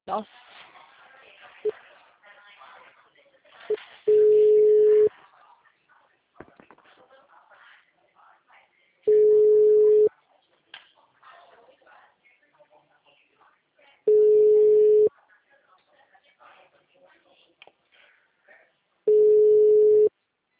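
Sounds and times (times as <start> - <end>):
faint murmur: 0.1 - 20.5
ringback tone on an outgoing telephone call: 4.1 - 5.1, 9.1 - 10.1, 14.1 - 15.1, 19.1 - 20.1.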